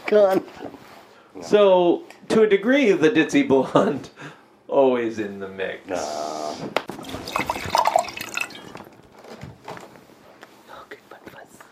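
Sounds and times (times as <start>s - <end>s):
speech: 0.1s - 7.2s
wine being poured into a glass: 7.0s - 9.0s.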